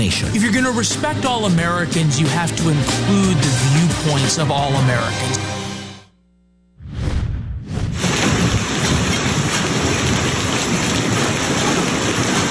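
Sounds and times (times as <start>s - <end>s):
speech: 0.0s - 5.6s
heavy rain in a thunderstorm: 8.0s - 12.5s.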